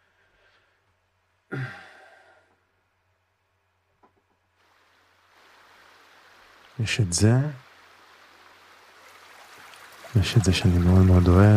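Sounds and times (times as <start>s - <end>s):
breathy burst: 1.5s - 2.5s
stream water flowing: 4.6s - 11.5s
speech: 6.8s - 7.6s, 10.2s - 11.5s.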